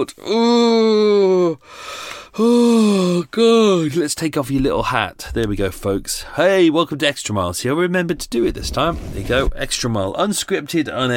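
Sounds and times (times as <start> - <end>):
speech: 0.0 - 11.1
loud yawn: 0.2 - 3.3
breathy exhale: 1.6 - 2.4.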